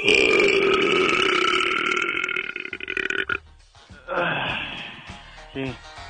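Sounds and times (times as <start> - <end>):
long loud resonant burp: 0.0 - 3.4
breathy gasp or exhale: 4.0 - 5.5.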